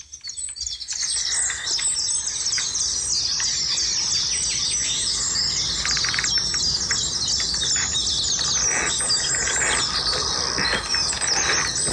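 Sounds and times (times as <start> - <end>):
dense chorus of other chirping birds: 0.0 - 11.9
great tits singing in the morning: 7.1 - 11.9.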